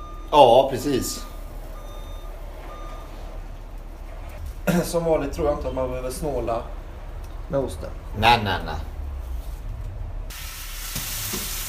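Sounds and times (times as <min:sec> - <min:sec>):
speech: 0:00.3 - 0:01.3, 0:04.7 - 0:06.8, 0:07.5 - 0:08.9
Parma ham sizzling in a hot dry frying pan: 0:10.3 - 0:11.6.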